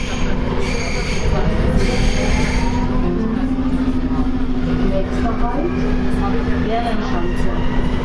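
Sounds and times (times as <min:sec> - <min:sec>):
thin metallic subway train wheel squeals: 0:00.0 - 0:03.0
faint voices: 0:00.0 - 0:08.0
subway train rumbling through an underground station: 0:00.0 - 0:08.0.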